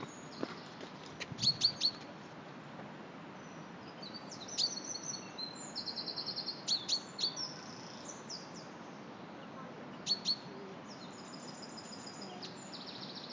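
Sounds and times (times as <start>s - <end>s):
constant low hiss: 0.0s - 13.3s
common chaffinch Fringilla coelebs calls: 1.4s - 2.0s, 3.4s - 13.3s.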